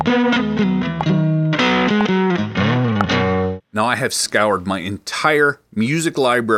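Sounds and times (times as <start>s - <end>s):
distorted electric guitar lick: 0.0s - 3.6s
speech: 3.8s - 6.5s.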